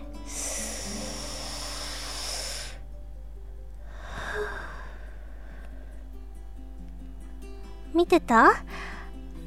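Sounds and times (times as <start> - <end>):
deep slow inhale during a relaxation breathing exercise: 0.0 - 3.0, 3.8 - 6.4, 8.7 - 9.3
low steady hum: 0.0 - 9.4
speech: 8.0 - 8.7.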